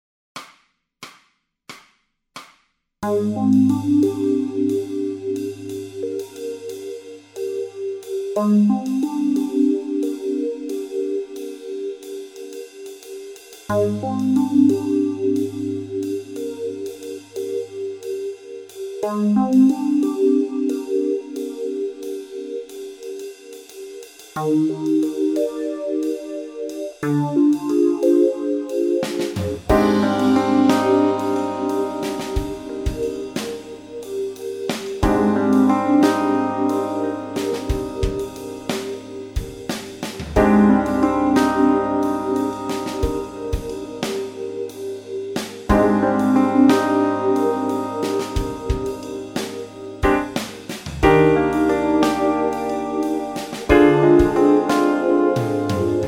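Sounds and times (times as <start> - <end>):
bass playing modes: 3.0 - 6.6, 13.7 - 17.7, 29.4 - 34.2, 35.0 - 44.6, 45.7 - 56.0
backing track music: 3.0 - 56.0.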